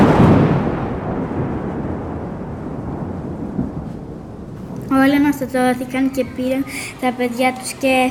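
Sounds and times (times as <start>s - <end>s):
loud deep crack of thunder from a lightning strike: 0.0s - 5.9s
speech: 5.3s - 8.0s.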